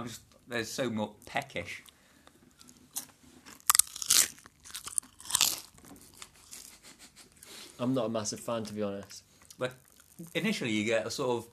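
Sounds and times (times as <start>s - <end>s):
speech: 0.0s - 1.9s, 7.8s - 11.5s
quiet chewing: 1.8s - 7.8s, 8.6s - 10.6s
lime flavour crisp being bitten and chewed: 2.6s - 6.7s, 9.4s - 10.6s.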